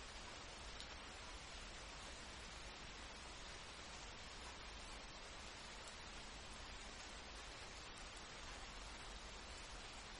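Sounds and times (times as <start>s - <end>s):
steady rain hiss: 0.0s - 10.1s
faint tiny ticks of rain drops: 0.8s - 1.0s.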